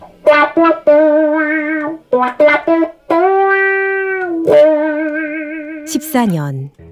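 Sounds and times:
electric guitar through a wah-wah pedal: 0.0 - 5.9
speech: 6.2 - 6.9.

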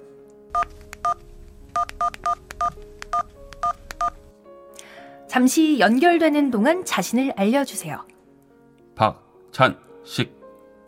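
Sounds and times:
speech: 0.6 - 4.2, 5.3 - 8.1, 9.0 - 10.4
telephone keypad DTMF dual-tone beeps: 1.8 - 4.2.

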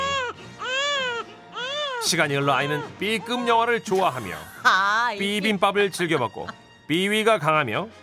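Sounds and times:
newborn baby wailing: 0.0 - 3.8
speech: 2.0 - 8.0.

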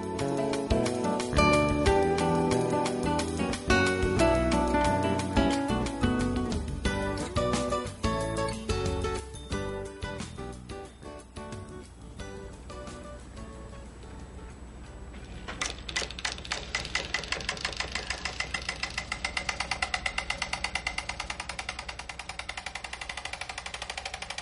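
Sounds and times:
faint music: 0.0 - 16.1
mechanical film projector clattering, ticking and whirring: 15.5 - 24.4.

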